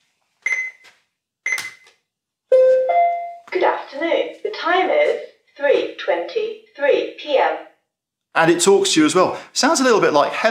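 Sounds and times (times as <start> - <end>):
bedside alarm clock beeping as snooze button is pressed: 2.5 - 3.5
speech: 3.9 - 7.7, 8.4 - 10.4.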